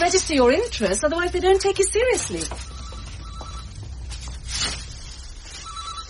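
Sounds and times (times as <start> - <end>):
low rumble: 0.0 - 6.0
speech: 0.1 - 2.8
telephone ringing: 2.2 - 4.1, 5.4 - 6.0.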